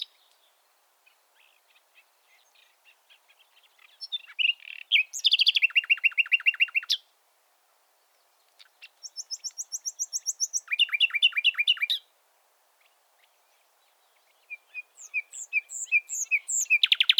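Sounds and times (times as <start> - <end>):
common nightingale Luscinia megarhynchos singing: 0.0 - 7.1, 8.0 - 12.1, 12.8 - 17.1.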